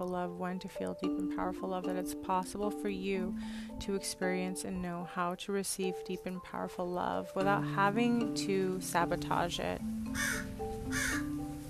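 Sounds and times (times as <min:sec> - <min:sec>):
speech: 0:00.0 - 0:11.1
raven croaking a harsh raspy caw: 0:10.1 - 0:11.4.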